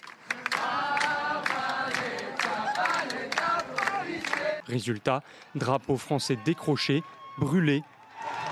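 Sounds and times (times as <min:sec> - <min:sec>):
large protest crowd chanting feminist and anti-police slogans: 0:00.3 - 0:04.7
speech: 0:04.7 - 0:08.4.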